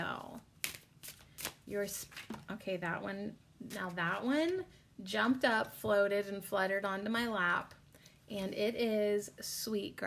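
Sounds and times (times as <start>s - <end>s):
tarot cards being shuffled for a reading: 0.6s - 2.5s
speech: 1.7s - 10.0s.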